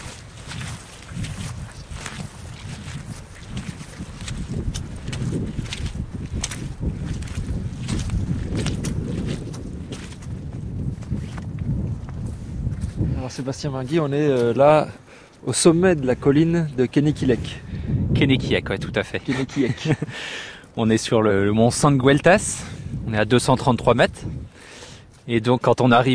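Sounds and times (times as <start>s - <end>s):
strong wind roaring across an open hilltop: 0.0s - 14.1s, 14.8s - 25.1s
speech: 13.4s - 24.5s, 25.3s - 26.1s
laughter: 19.3s - 20.2s.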